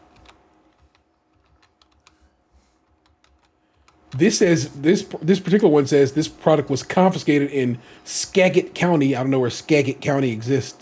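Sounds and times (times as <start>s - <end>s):
faint typing and clicking on a computer keyboard: 0.0s - 4.3s
speech: 4.2s - 10.8s.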